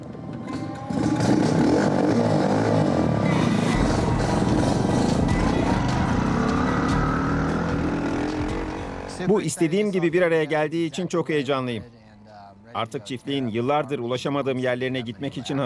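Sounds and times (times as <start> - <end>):
custom-built farm motorcycle engine roaring on a test drive: 0.0 - 9.4
speech: 9.2 - 12.0, 12.7 - 15.6.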